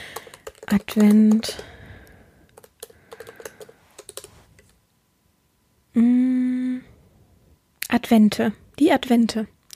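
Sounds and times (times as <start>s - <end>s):
typing on a computer keyboard: 0.0s - 1.8s, 2.5s - 4.8s
speech: 0.7s - 1.7s, 8.1s - 9.6s.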